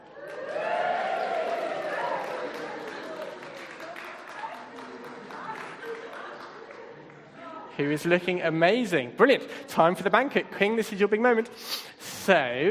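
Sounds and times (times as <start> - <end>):
audience cheering: 0.0 - 6.3
audience clapping: 0.0 - 7.4
speech: 7.8 - 12.7.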